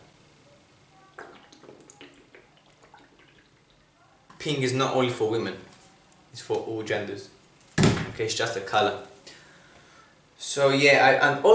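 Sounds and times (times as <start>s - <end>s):
water sloshing in a pink reusable bottle: 1.2s - 3.9s
speech: 4.4s - 5.7s, 6.4s - 7.4s, 8.2s - 9.1s, 10.6s - 11.5s.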